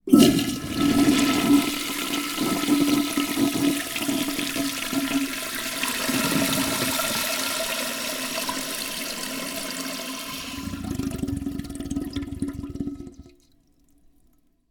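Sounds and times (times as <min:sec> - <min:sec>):
toilet in a temp house: 0:00.0 - 0:14.4.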